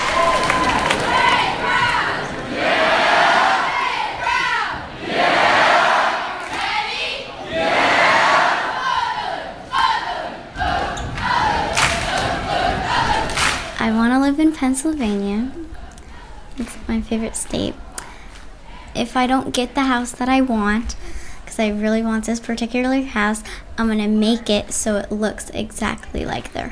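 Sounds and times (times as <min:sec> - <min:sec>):
large crowd of children cheering and chanting: 0:00.0 - 0:13.7
speech: 0:14.6 - 0:15.6, 0:16.9 - 0:17.8, 0:19.0 - 0:26.7.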